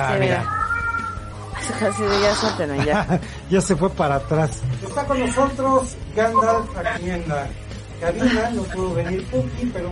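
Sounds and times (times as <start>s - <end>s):
speech: 0.0s - 0.6s, 1.6s - 9.9s
cat meowing in a broadcast studio: 0.2s - 2.6s
laughter: 2.5s - 3.4s.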